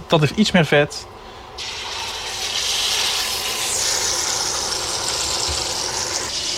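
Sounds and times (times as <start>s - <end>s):
speech: 0.1s - 1.8s
partridges frying back-side down in a pan over medium-high heat: 1.6s - 6.5s.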